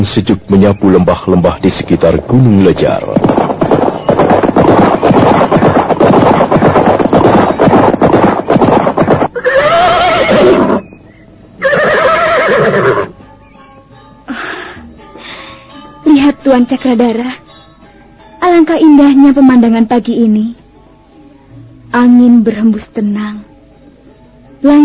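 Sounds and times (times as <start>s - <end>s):
speech: 0.0s - 3.4s, 16.4s - 17.4s, 18.5s - 20.6s, 21.9s - 23.5s, 24.6s - 24.8s
two horses galloping across a meadow: 1.6s - 10.9s, 11.6s - 13.1s
horse whinnying: 8.6s - 10.9s, 11.6s - 13.1s.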